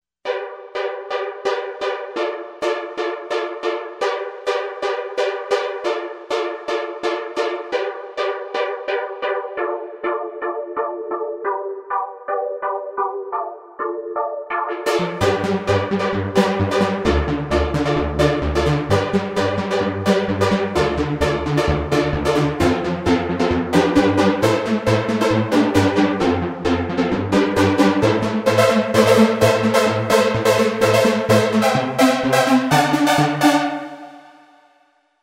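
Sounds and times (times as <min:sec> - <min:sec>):
Roland V-Synth synthesizer factory patches: 0:00.2 - 0:34.6.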